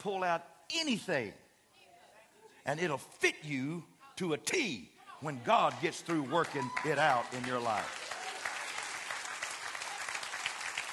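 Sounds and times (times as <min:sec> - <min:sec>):
speech: 0:00.0 - 0:01.4, 0:02.6 - 0:08.0
large group applauding: 0:05.4 - 0:10.9.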